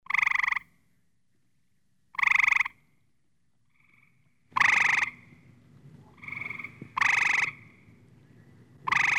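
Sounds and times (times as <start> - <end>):
frog croaking: 0.0 - 0.7, 2.2 - 2.8, 3.7 - 5.4, 6.0 - 7.9, 8.8 - 9.1.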